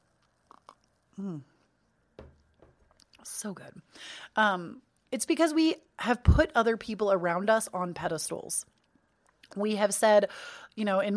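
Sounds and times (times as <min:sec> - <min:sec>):
person sipping coffee: 0:00.0 - 0:01.9
short voiced gulp-like swallow: 0:00.3 - 0:01.6
speech: 0:01.2 - 0:01.6, 0:03.2 - 0:08.7, 0:09.5 - 0:11.1.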